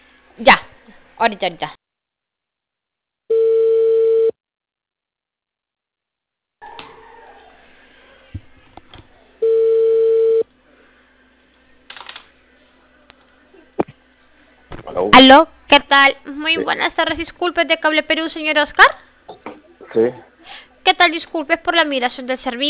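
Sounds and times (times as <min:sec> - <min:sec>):
speech: 0:01.2 - 0:01.8, 0:15.3 - 0:22.6
outgoing phone call ringback tone: 0:03.3 - 0:04.3, 0:09.4 - 0:10.4.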